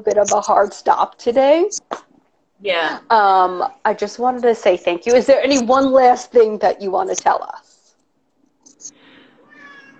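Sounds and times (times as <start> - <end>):
speech: 0.0 - 7.7
cat giving high chirps: 8.7 - 9.9
cat meowing: 9.4 - 9.9.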